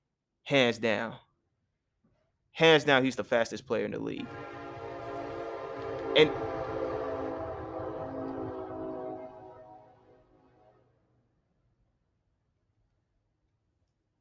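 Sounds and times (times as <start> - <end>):
speech: 0.5 - 1.2, 2.6 - 4.6, 6.2 - 6.5
train horn blaring: 4.2 - 10.9.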